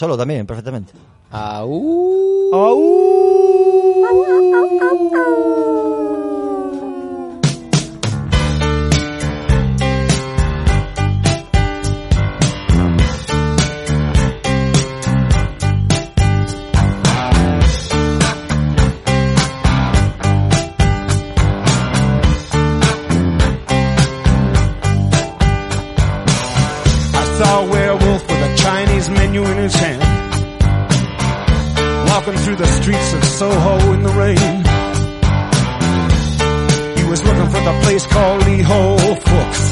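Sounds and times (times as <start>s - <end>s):
speech: 0.0s - 6.1s
long wolf-like howl sung in a pop rock song: 1.7s - 8.4s
loud steady piano-and-drums pop rock groove: 7.5s - 39.7s.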